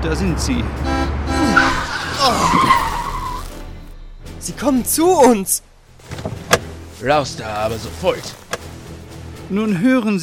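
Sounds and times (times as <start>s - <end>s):
speech: 0.0s - 1.1s, 4.5s - 5.7s, 7.0s - 8.4s, 9.5s - 10.2s
Mercedes car engine roaring while accelerating in a chase: 0.0s - 9.4s
car tyres screeching during a chase: 1.4s - 3.9s, 4.9s - 9.1s.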